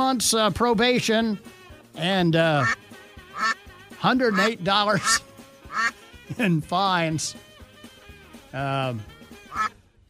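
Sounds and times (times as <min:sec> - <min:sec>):
speech: 0:00.1 - 0:07.5, 0:08.5 - 0:09.7
duck quacking: 0:02.6 - 0:06.0, 0:09.5 - 0:09.8.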